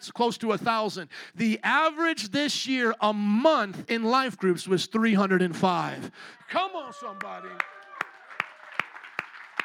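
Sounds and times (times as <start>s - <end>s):
speech: 0.0s - 7.8s
sparse scattered audience claps: 7.0s - 9.6s.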